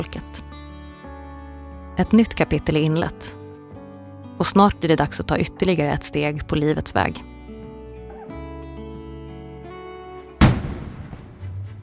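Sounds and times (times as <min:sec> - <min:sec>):
speech: 0:00.0 - 0:00.4, 0:02.0 - 0:03.4, 0:04.4 - 0:07.3
cannon salute blast over Stockholm for the birth of a crown prince: 0:10.4 - 0:11.7.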